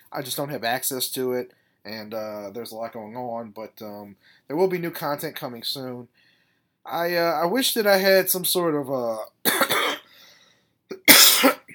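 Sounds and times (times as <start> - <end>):
speech: 0.1 - 6.2, 6.8 - 9.8
faint wheezy breath: 6.1 - 6.8, 10.0 - 10.8
person coughing harshly: 9.5 - 10.1, 10.9 - 11.7.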